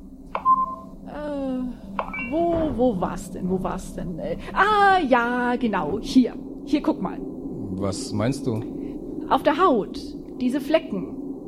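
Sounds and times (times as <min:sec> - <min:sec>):
mobile phone electronic beeps and rising tones: 0:00.4 - 0:00.9, 0:02.0 - 0:02.6
speech: 0:01.6 - 0:11.2
mobile phone clicks: 0:02.0 - 0:02.3.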